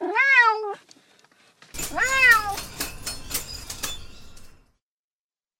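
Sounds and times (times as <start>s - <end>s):
neighbour's cat meowing on a balcony cage: 0.0s - 0.8s, 1.9s - 2.6s.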